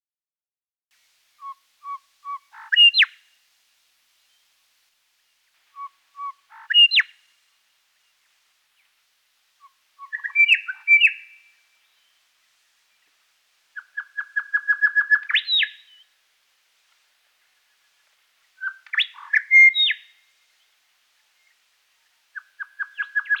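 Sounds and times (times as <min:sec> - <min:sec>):
grey shrike-thrush: 0:01.4 - 0:03.3, 0:05.7 - 0:07.2, 0:09.6 - 0:12.2, 0:13.8 - 0:16.1, 0:18.6 - 0:20.3, 0:22.3 - 0:23.3.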